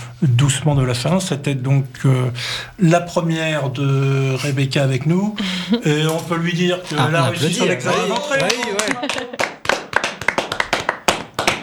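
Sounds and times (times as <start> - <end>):
speech: 0.2 - 9.5
laughter: 4.4 - 10.8
hands clapping at a small group gathering: 7.9 - 11.6.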